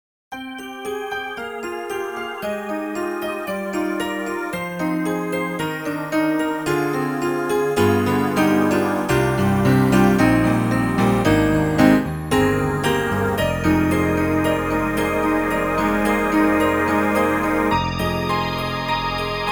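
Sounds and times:
wave stack piano: 0:00.3 - 0:19.5.

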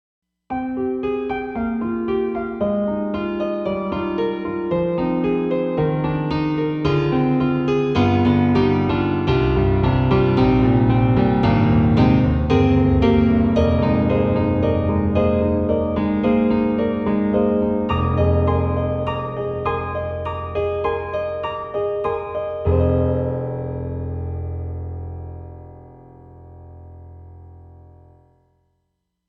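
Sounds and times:
Roland SD-50 stage piano: 0:00.5 - 0:28.4.

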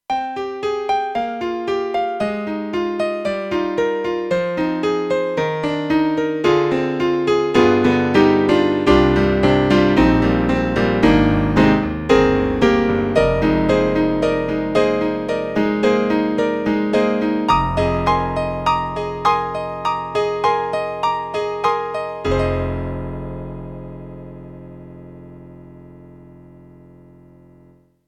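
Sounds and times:
Yamaha MU5 grand piano: 0:00.1 - 0:27.9.

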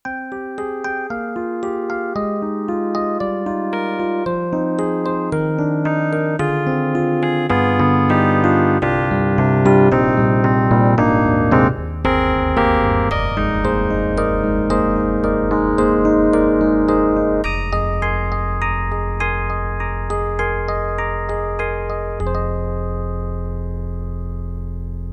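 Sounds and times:
Yamaha MU1000EX electric piano: 0:00.0 - 0:25.1.

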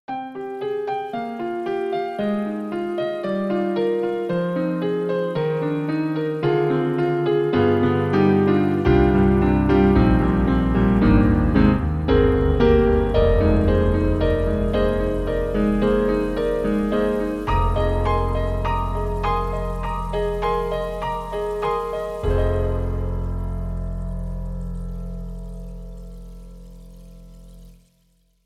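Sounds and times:
KORG KRONOS 2 synthesizer water piano: 0:00.1 - 0:28.4.

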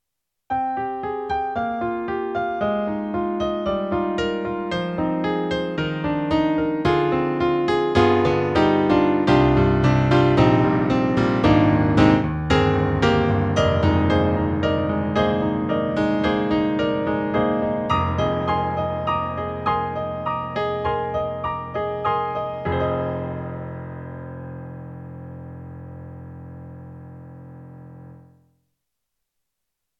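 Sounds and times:
EDIROL SD-80 stereo piano: 0:00.5 - 0:28.5.

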